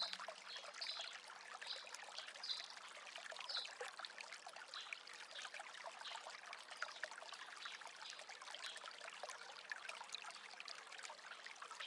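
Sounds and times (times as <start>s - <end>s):
bubbling brook water flowing: 0.0s - 11.8s.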